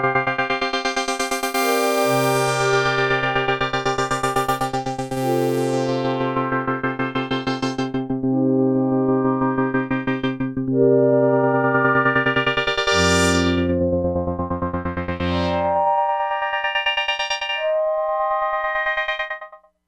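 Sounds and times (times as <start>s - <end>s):
Crumar Bit 99 synthesizer digital repeat: 0.2s - 8.3s, 9.0s - 19.6s.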